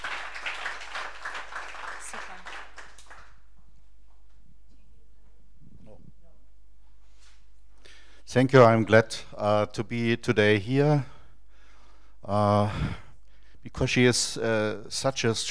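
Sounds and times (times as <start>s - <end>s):
audience applause: 0.0s - 3.4s
speech: 8.3s - 11.1s, 12.2s - 13.0s, 13.8s - 15.4s.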